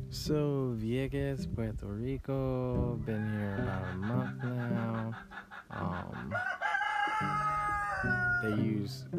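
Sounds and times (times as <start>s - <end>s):
speech: 0.1s - 6.6s, 7.2s - 9.1s
chickens clucking at a pallet chicken coop in Vieques, Puerto Rico: 2.8s - 9.0s
rooster crowing loudly at a pallet chicken coop in Vieques, Puerto Rico: 3.1s - 4.2s, 5.7s - 8.8s.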